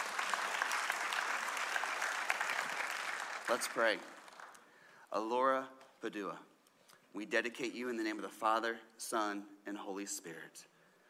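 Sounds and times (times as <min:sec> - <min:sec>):
room full of people applauding: 0:00.0 - 0:04.7
speech: 0:03.5 - 0:04.2, 0:05.1 - 0:06.5, 0:07.1 - 0:10.7.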